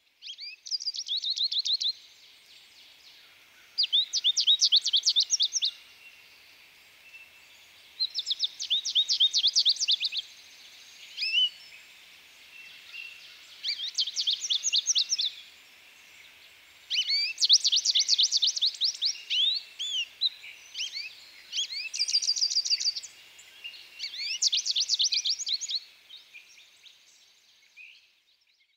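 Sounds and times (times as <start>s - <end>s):
American Goldfinch singing: 3.8s - 5.8s, 8.0s - 10.3s, 11.0s - 11.8s, 12.6s - 15.5s, 16.2s - 27.0s.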